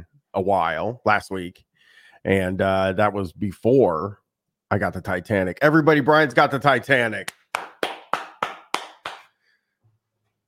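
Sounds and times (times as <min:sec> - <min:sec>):
speech: 0:00.4 - 0:07.4
sharp hand claps: 0:07.2 - 0:09.4.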